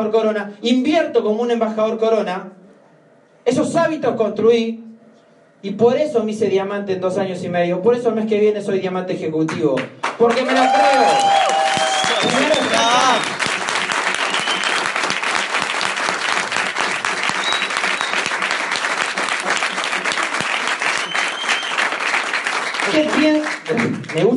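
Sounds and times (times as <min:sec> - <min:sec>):
speech: 0:00.0 - 0:02.6, 0:03.4 - 0:04.8, 0:05.6 - 0:11.6
large audience applauding: 0:10.0 - 0:24.3
audience members cheering and calling out: 0:10.2 - 0:23.5.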